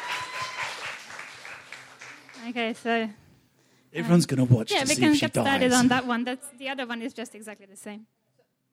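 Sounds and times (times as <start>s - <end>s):
audience applauding for a volunteer: 0.0s - 2.7s
speech: 2.4s - 3.2s, 3.9s - 8.2s.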